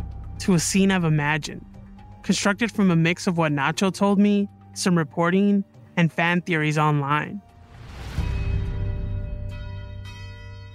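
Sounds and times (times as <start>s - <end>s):
speech: 0.4s - 7.5s
cathedral church bells ringing: 8.9s - 10.7s.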